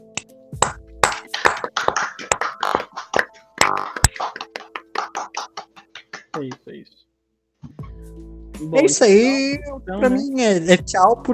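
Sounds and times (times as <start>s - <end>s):
small group clapping in applause: 1.0s - 6.7s
speech: 6.4s - 7.1s, 8.0s - 11.3s.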